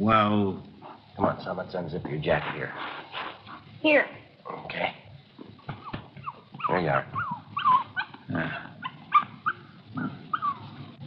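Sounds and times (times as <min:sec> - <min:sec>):
speech: 0:00.0 - 0:05.0, 0:06.7 - 0:07.3, 0:08.3 - 0:08.7
puppy yapping and barking: 0:05.7 - 0:09.6, 0:10.3 - 0:10.7.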